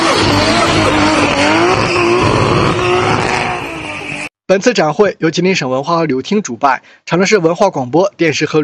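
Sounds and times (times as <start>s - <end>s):
modified car engine roaring and revving in a drift show: 0.0s - 4.2s
modified car tires squealing while drifting at a drift show: 0.0s - 4.3s
speech: 4.5s - 8.6s.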